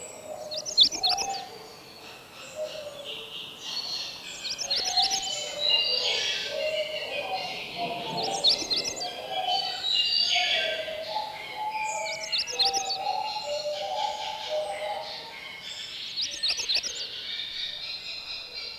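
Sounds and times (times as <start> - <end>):
faint chorus of other birds: 0.0 - 18.7
magnolia warbler singing: 0.0 - 18.7.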